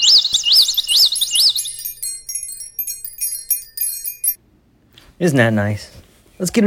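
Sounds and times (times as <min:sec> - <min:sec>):
birds singing: 0:00.0 - 0:04.3
speech: 0:05.2 - 0:06.6.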